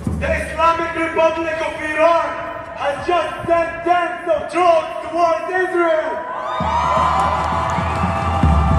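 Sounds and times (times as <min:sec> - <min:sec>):
speech: 0:00.2 - 0:07.7
protest crowd cheering and shouting: 0:05.7 - 0:08.7.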